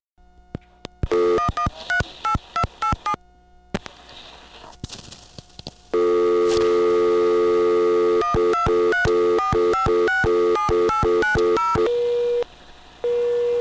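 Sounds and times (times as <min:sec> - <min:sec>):
telephone test dial tone on a phone line: 0:01.1 - 0:03.2, 0:06.0 - 0:12.4
telephone touch-tone keypad beeps: 0:01.1 - 0:03.2, 0:08.2 - 0:11.9.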